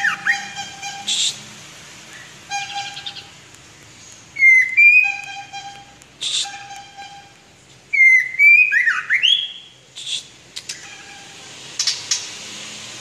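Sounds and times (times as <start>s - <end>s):
white-rumped shama song: 0.0s - 1.3s, 2.1s - 7.3s, 7.9s - 11.0s.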